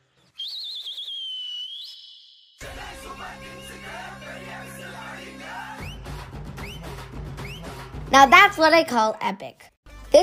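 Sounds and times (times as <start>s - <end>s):
shrill trilling whistle blown in celebration: 0.2s - 3.4s, 5.0s - 7.8s
speech: 8.1s - 10.2s.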